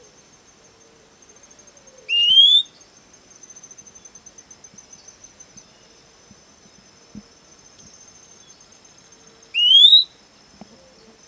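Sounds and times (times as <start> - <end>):
Fuscous flycatcher Cnemotriccus fuscatus giving a rising whistled note: 2.1 - 2.7, 9.6 - 10.1.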